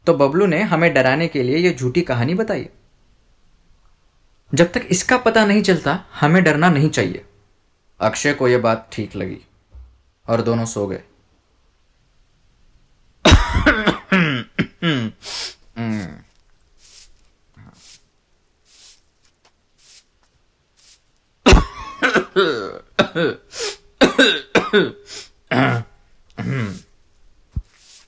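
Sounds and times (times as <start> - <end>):
speech: 0.1 - 2.8, 4.5 - 7.3, 8.0 - 9.5, 10.3 - 11.1, 22.4 - 26.8
harsh rough hacking coughs with throaty clearing: 13.3 - 15.2, 21.5 - 26.9.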